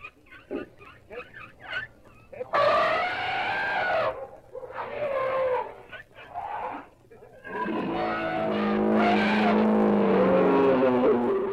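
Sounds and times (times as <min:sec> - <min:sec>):
elephants trumpeting: 0:02.5 - 0:11.5.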